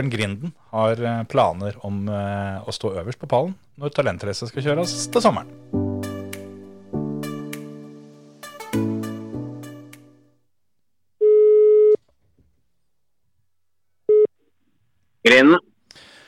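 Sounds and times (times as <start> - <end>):
speech: 0.0 - 5.8, 15.2 - 15.6
phone ringback tone while placing a call: 11.2 - 12.0.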